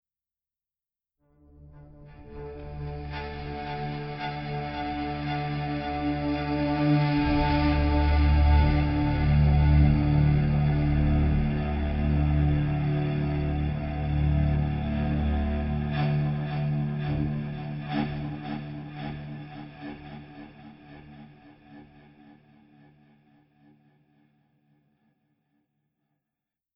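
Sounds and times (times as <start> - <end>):
combat mood cello music: 1.6 - 19.3.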